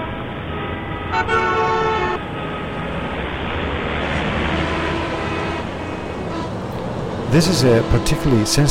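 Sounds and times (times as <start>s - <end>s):
car horn blaring: 0.0s - 2.8s, 4.5s - 6.6s, 7.4s - 8.6s
gridlocked traffic of trucks and tankers on a six-lane road: 0.0s - 8.6s
speech: 1.1s - 1.7s, 7.3s - 8.6s.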